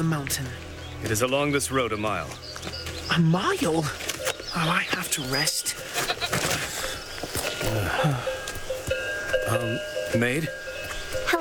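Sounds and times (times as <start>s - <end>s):
speech: 0.0s - 6.0s, 7.7s - 8.4s, 9.5s - 10.6s
footsteps: 0.2s - 5.1s, 5.7s - 11.3s
faint rustling: 5.6s - 11.3s
goat bleating: 5.8s - 6.8s.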